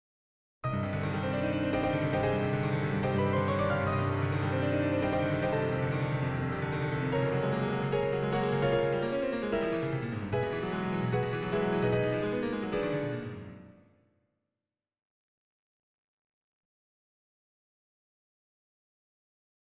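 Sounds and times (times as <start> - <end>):
piano study: 0.6 - 14.0.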